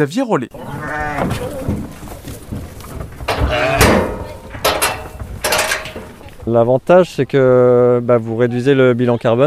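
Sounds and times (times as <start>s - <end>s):
speech: 0.0s - 1.9s, 6.4s - 9.4s
farm noise: 0.4s - 9.4s
sheep bleating while grazing in an eco-grazing trial: 0.5s - 2.1s, 3.3s - 4.5s.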